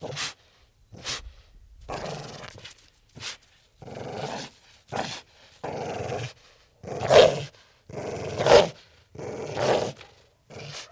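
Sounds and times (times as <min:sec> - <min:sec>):
Pit bull drawn-out growling barks: 0:03.8 - 0:10.8.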